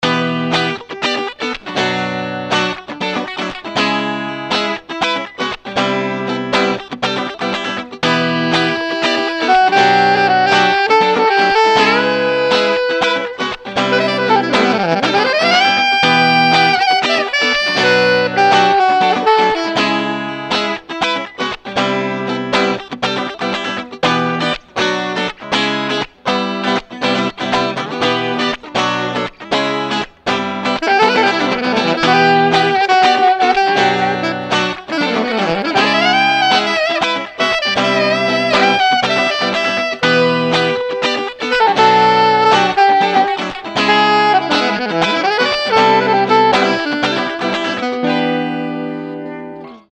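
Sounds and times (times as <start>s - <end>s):
funk hip hop guitar: 0.0s - 49.9s
funk hip hop saxophone: 8.0s - 21.2s, 30.6s - 49.8s.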